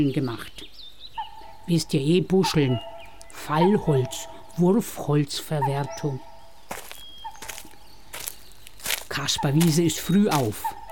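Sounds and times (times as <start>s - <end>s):
speech: 0.0s - 0.6s, 1.7s - 6.3s, 9.2s - 10.8s
man's footsteps walking through a fresh forest in the early morning: 5.9s - 10.8s.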